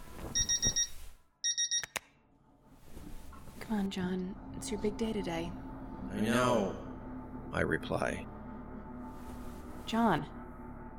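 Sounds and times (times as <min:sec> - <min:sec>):
alarm clock beeping in bursts of electronic tones: 0:00.4 - 0:02.0
alarm clock switch clicks: 0:01.5 - 0:02.0
speech: 0:03.7 - 0:06.9, 0:07.5 - 0:08.3, 0:09.9 - 0:10.4.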